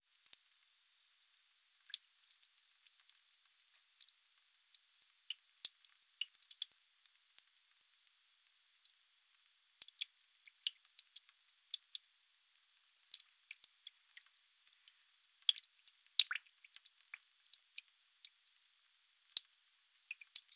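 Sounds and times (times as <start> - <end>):
bathroom sink dripping: 1.3 - 20.5.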